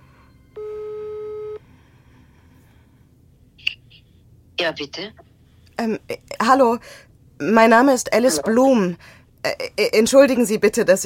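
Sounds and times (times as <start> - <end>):
telephone ringing tone while calling a mobile: 0.5 - 1.6
speech: 4.6 - 11.0.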